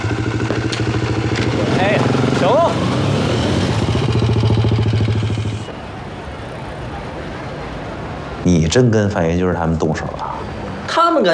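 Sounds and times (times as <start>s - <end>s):
car engine running before driving off: 0.0s - 7.0s
speech: 8.7s - 11.3s.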